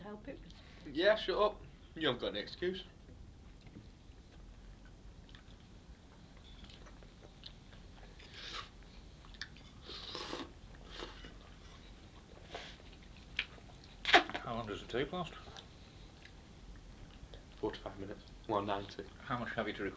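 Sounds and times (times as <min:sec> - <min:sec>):
steady low rumble: 0:00.0 - 0:19.9
speech: 0:00.1 - 0:03.0, 0:14.7 - 0:15.5, 0:17.6 - 0:19.9
wet slurping of tea from a mug: 0:08.2 - 0:08.7, 0:09.8 - 0:11.4.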